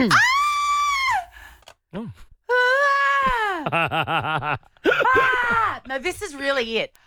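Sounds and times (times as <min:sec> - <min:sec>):
speech: 0:00.0 - 0:00.3, 0:06.0 - 0:07.0
woman screaming: 0:00.0 - 0:01.3, 0:02.5 - 0:03.6, 0:05.0 - 0:05.9
laughter: 0:03.7 - 0:05.8.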